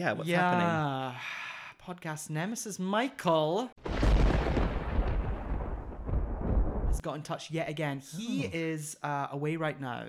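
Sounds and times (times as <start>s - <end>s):
speech: 0.0s - 3.9s, 7.0s - 10.0s
deep thunder rumbling: 3.8s - 7.0s.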